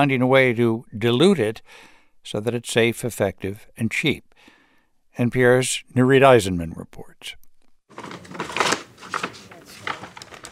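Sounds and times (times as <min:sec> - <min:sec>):
speech: 0:00.0 - 0:04.6, 0:05.2 - 0:07.4
paper bag rustling: 0:07.9 - 0:10.4.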